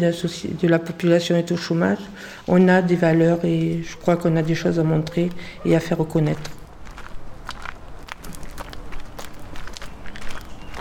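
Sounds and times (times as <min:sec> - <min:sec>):
speech: 0:00.0 - 0:06.6
constant outdoor noise in Marseille: 0:00.0 - 0:10.7
footsteps walking up a pedestrian footpath in Marseille: 0:03.0 - 0:10.7.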